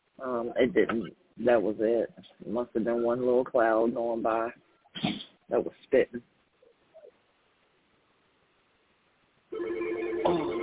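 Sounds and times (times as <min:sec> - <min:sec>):
speech: 0:00.2 - 0:06.3
telephone ringing: 0:09.5 - 0:10.6.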